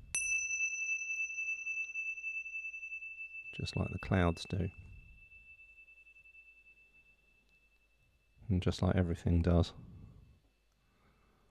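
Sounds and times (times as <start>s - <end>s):
small Tibetan Ting Sha cymbals ringing: 0.0s - 8.7s
speech: 3.6s - 4.9s, 8.5s - 9.9s.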